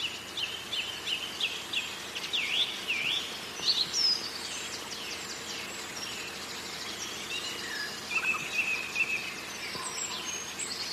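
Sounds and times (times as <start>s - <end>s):
outdoor hiss: 0.0s - 10.9s
sedge warbler singing: 0.0s - 10.9s.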